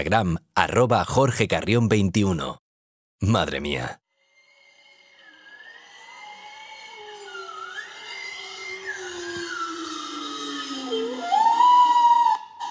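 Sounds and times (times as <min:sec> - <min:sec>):
speech: 0:00.0 - 0:02.6, 0:03.2 - 0:04.0
bowhead whale song recorded underwater: 0:04.6 - 0:12.6.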